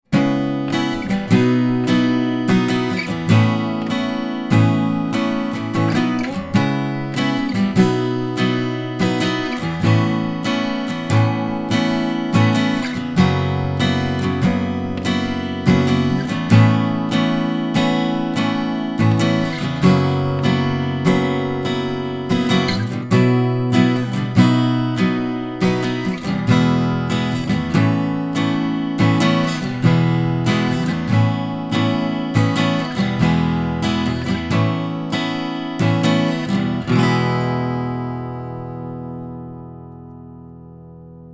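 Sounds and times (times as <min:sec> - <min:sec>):
acoustic guitar strumming into a microphone: 0:00.0 - 0:41.3.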